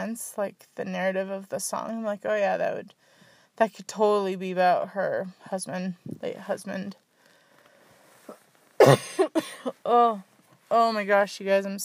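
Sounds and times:
speech: 0.0 - 7.0, 8.8 - 11.8
person coughing: 8.8 - 9.8.

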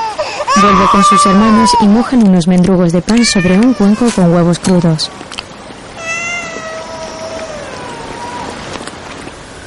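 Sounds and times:
small child crying: 0.0 - 2.1, 3.2 - 4.2, 6.0 - 8.8
steady hiss of outdoor noise: 0.0 - 9.6
speech: 0.6 - 5.4.

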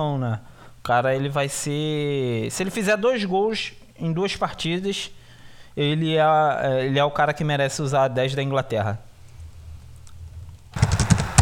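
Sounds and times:
speech: 0.0 - 5.2, 5.8 - 9.1
heavy computer keyboard typing: 10.8 - 11.4.

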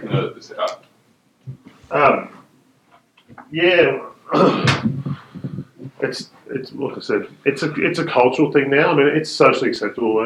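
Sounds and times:
speech: 0.1 - 0.9, 1.9 - 2.4, 3.5 - 4.9, 6.0 - 10.2
door creaking and being pushed shut: 4.6 - 5.1.

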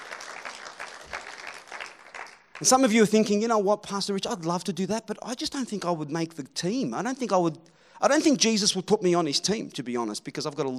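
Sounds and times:
audience applause in a large room: 0.0 - 2.8
speech: 2.6 - 10.7.

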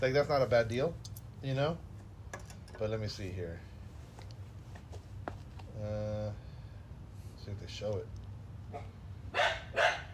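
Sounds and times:
speech: 0.0 - 1.9, 2.8 - 3.7, 5.8 - 6.4, 7.4 - 9.9
low hum: 0.0 - 10.1
dog barking: 8.7 - 10.1.

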